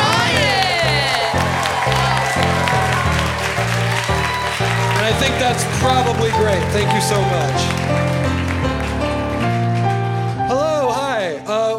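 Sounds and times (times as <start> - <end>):
whoops from a large crowd: 0.0 - 5.4
large crowd applauding and cheering: 0.0 - 11.4
music with a steady chord pattern: 0.0 - 11.7
speech: 5.2 - 9.0.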